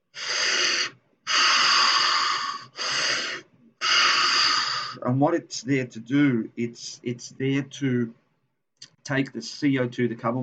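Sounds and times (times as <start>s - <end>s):
person breathing forcefully in a breathing exercise: 0.0s - 5.0s
speech: 5.1s - 8.2s, 9.1s - 10.4s.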